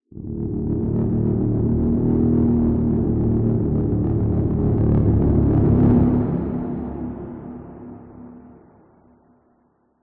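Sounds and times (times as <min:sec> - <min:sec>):
ominous horror low wavering growl distortion into swell with reverb: 0:00.1 - 0:07.7.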